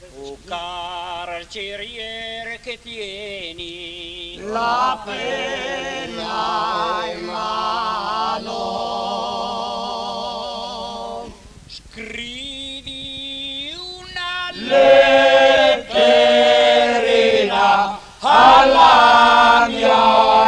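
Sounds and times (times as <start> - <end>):
male choir singing: 4.2 - 11.4, 14.2 - 20.4.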